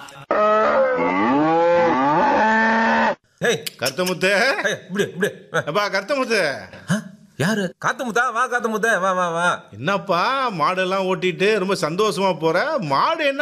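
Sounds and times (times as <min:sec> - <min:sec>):
cow mooing: 0:00.4 - 0:03.2
person talking: 0:03.4 - 0:13.3.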